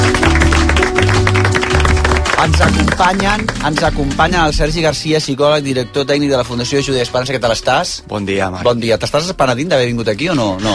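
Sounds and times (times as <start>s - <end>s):
audience clapping: 0.0s - 4.5s
speech: 2.4s - 10.7s.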